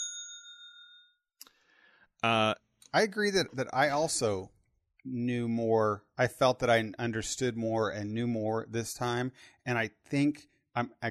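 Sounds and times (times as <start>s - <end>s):
bell rung as spoiler warning: 0.0s - 1.2s
speech: 2.2s - 11.0s.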